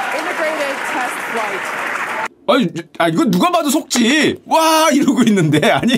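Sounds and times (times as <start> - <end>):
large crowd cheering and applauding during a rocket launch broadcast: 0.0 - 2.3
speech: 1.4 - 5.9
laughter: 5.2 - 5.9.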